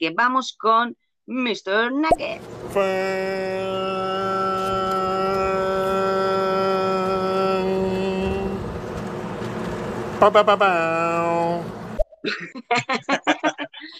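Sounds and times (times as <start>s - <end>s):
speech: 0.0s - 4.4s, 10.2s - 13.9s
long horn blast: 2.6s - 11.9s
laughter: 12.3s - 13.9s.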